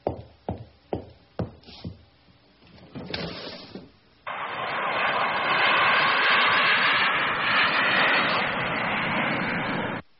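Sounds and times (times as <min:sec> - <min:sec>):
airplane engine roar: 0:04.3 - 0:10.0.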